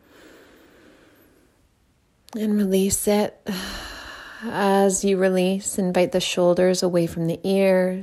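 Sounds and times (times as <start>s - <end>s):
deep inhale through the nose: 0.0s - 1.6s
speech: 2.3s - 3.8s, 4.4s - 8.0s.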